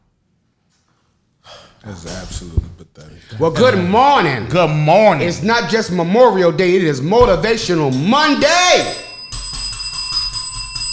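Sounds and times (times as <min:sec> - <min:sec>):
speech: 0:01.8 - 0:09.0
small bell ringing rapidly: 0:07.9 - 0:10.9.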